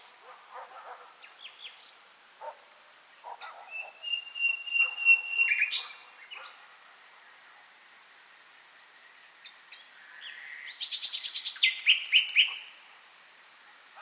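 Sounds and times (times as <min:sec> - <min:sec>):
common nightingale song: 0:01.2 - 0:02.0, 0:03.4 - 0:06.6, 0:09.3 - 0:12.8.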